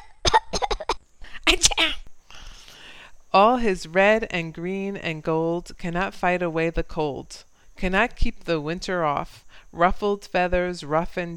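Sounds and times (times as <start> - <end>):
voice imitating a parrot's cough or sneeze: 0.0 - 2.0
speech: 3.4 - 11.3.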